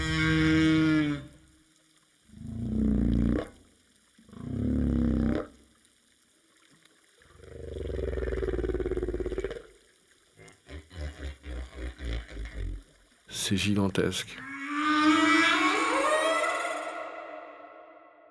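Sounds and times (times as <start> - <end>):
whale vocalizations at the surface: 0.0 - 1.4, 2.3 - 5.6, 7.3 - 13.1, 14.4 - 18.2
speech: 13.5 - 14.5.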